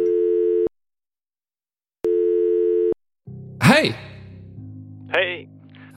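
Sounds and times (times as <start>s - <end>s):
telephone ringback tone while calling a petrol station: 0.0s - 0.7s, 2.1s - 3.0s
speech: 3.6s - 4.1s, 5.1s - 5.6s.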